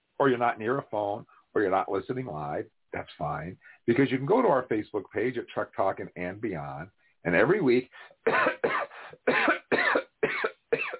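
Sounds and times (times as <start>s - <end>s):
speech: 0.2s - 9.6s
harsh coughs with a narrow phone-like tone: 8.2s - 10.9s.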